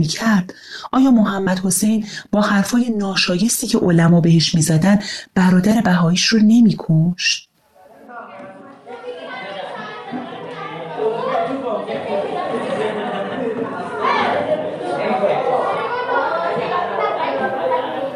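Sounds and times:
speech: 0.0s - 7.5s
crowd of children shouting, chattering and laughing at school recess: 8.1s - 18.1s.

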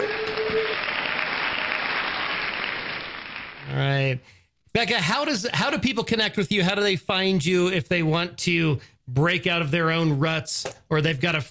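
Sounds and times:
crowd applauding with dense steady clapping: 0.0s - 3.8s
speech: 4.1s - 11.4s.

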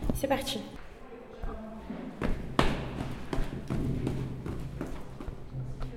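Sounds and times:
speech: 0.2s - 0.8s
quick heavy footsteps thudding: 1.9s - 5.7s.

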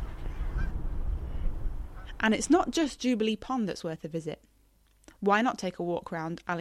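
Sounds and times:
flock of Canada geese honking in flight overhead: 0.0s - 0.8s
steady low outdoor rumble: 0.0s - 4.1s
speech: 2.2s - 4.5s, 5.2s - 6.5s.

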